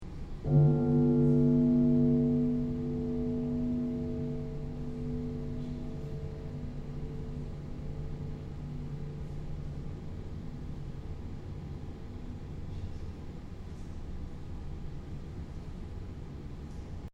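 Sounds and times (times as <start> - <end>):
piano hit: 0.4 - 12.4
timpani hit: 0.5 - 10.8.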